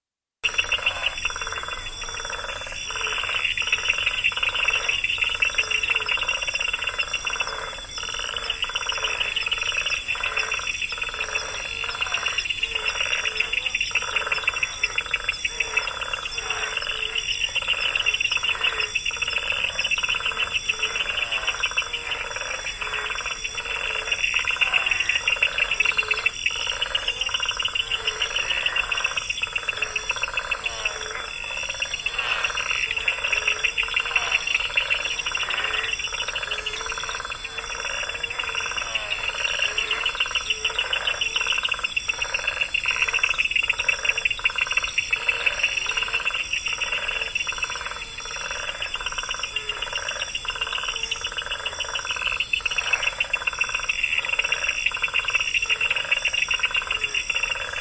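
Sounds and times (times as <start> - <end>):
night time African bush ambience: 0.4 - 57.7.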